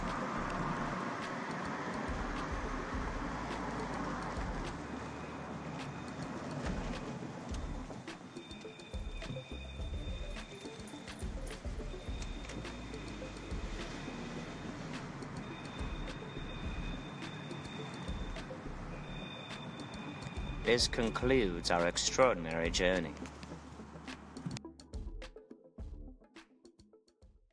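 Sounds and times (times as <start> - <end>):
car engine low rumble driving down an alley: 0.0 - 24.6
faint rattles and ticks: 0.0 - 24.6
thin whining tones: 1.6 - 22.2
speech: 20.7 - 23.3.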